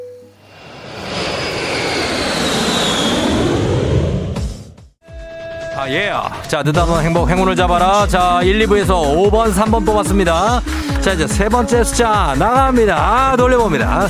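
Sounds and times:
jet airplane taking off: 0:00.3 - 0:04.9
speech: 0:05.9 - 0:14.0.

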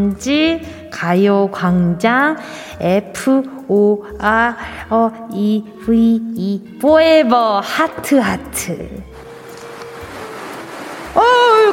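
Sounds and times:
speech: 0:00.0 - 0:09.1, 0:11.2 - 0:11.7
ocean waves washing up on a sandy beach: 0:09.2 - 0:11.7.

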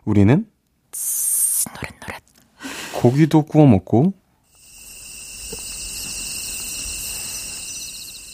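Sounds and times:
speech: 0:00.1 - 0:02.1, 0:03.0 - 0:04.2
crickets chirping in the grass: 0:04.5 - 0:08.3.

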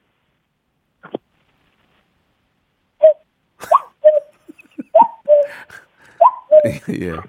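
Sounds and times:
person's voice imitating a cuckoo call: 0:03.0 - 0:05.6, 0:06.2 - 0:06.9
laughter: 0:03.6 - 0:05.8, 0:06.6 - 0:07.2
speech: 0:06.6 - 0:07.2.

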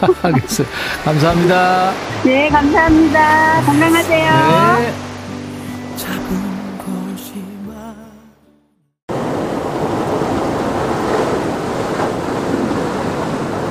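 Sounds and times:
laughter: 0:00.0 - 0:01.2, 0:02.1 - 0:04.9
speech: 0:00.0 - 0:05.1
ocean surf waves breaking and hissing on the shore of Gwangalli beach: 0:00.0 - 0:07.1, 0:09.1 - 0:13.6
short musical passage: 0:02.1 - 0:06.0.

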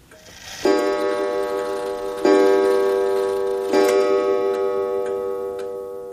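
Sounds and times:
grandfather clock striking: 0:00.0 - 0:06.1.

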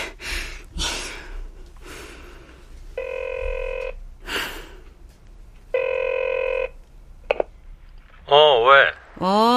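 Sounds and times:
telephone ringing in electronic bursts: 0:03.0 - 0:04.0, 0:05.7 - 0:06.8
speech: 0:08.3 - 0:09.5.

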